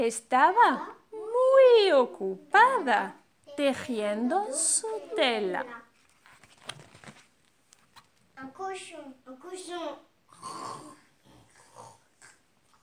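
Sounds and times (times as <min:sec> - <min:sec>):
speech: 0:00.0 - 0:01.0, 0:01.6 - 0:05.8, 0:08.4 - 0:11.0
person imitating pig grunts: 0:10.3 - 0:12.4.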